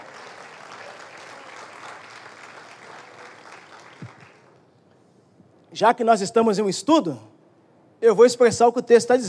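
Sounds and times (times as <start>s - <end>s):
church audience applauding during a sermon: 0.0s - 4.6s
speech: 5.8s - 7.3s, 8.0s - 9.2s.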